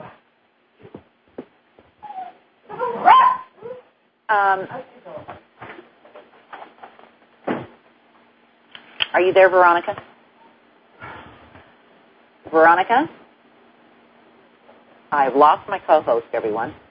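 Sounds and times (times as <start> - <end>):
dog barking, yipping and whimpering: 2.7 - 3.8
speech: 4.3 - 5.0, 9.2 - 10.1, 12.6 - 13.2, 15.1 - 16.8.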